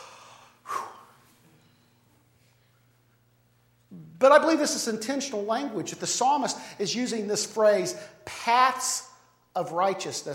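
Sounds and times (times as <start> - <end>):
group taking a deep breath: 0.0 - 1.4
speech: 4.2 - 10.3.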